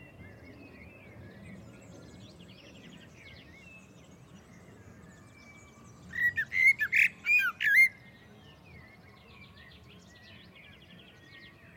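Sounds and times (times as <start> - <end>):
Common blackbird Turdus merula harsh squawk: 6.1 - 8.0.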